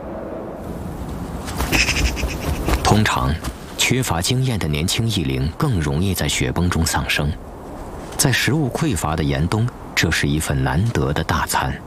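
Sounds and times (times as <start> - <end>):
soft steady outdoor wind: 0.0 - 11.8
golden eagle calling in sharp high yelps: 1.6 - 2.8
speech: 3.0 - 7.5, 8.2 - 11.8.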